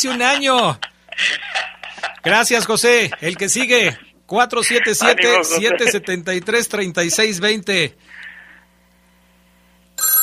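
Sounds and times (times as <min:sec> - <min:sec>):
speech: 0:00.0 - 0:01.4, 0:02.2 - 0:08.2
laughter: 0:00.0 - 0:06.3
low steady hum: 0:00.0 - 0:10.0
telephone ringing with an incoming call to a football radio call-in show: 0:10.0 - 0:10.2.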